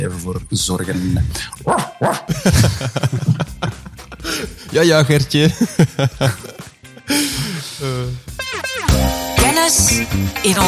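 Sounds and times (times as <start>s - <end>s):
speech: 0.0s - 3.4s, 4.7s - 6.4s, 9.6s - 10.6s
dog barking and yipping: 1.6s - 2.3s
laughter: 1.8s - 8.0s.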